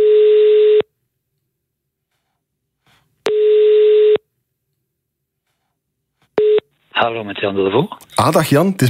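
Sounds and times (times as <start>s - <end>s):
telephone ringback tone while placing a call: 0.0s - 0.9s, 3.3s - 4.2s, 6.4s - 6.6s
speech: 7.0s - 8.8s.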